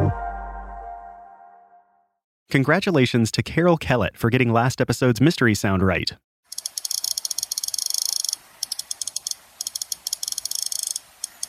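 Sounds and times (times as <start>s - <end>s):
speech: 2.5s - 6.3s
iPod click wheel being scrolled: 6.5s - 11.4s.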